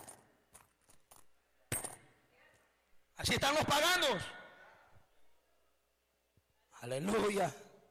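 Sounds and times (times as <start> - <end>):
coins clinking and dropping: 0.0 - 2.1
speech: 3.2 - 4.4, 6.8 - 7.6.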